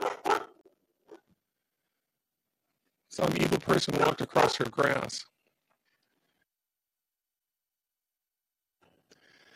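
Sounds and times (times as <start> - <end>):
dog barking: 0.0 - 0.6, 3.9 - 4.7
speech: 3.2 - 5.3.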